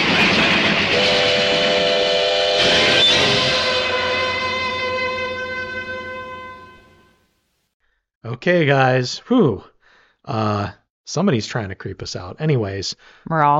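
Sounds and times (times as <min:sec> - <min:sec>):
rail cars rumbling: 0:00.0 - 0:07.1
train whistle wailing in a long piercing blast: 0:00.4 - 0:07.3
speech: 0:08.4 - 0:09.7, 0:10.3 - 0:13.5.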